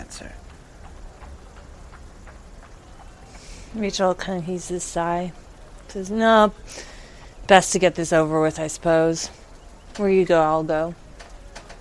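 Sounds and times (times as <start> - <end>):
steady rain falling: 0.0 - 11.8
speech: 3.7 - 6.9, 7.5 - 9.4, 10.0 - 11.0.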